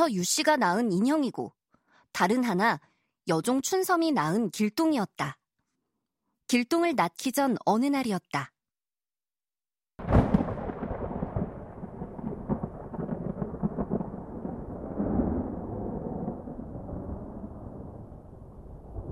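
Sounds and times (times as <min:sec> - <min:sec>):
speech: 0:00.0 - 0:05.4, 0:06.5 - 0:08.5
loud crack of thunder rolling into a deep rumble: 0:10.0 - 0:19.1.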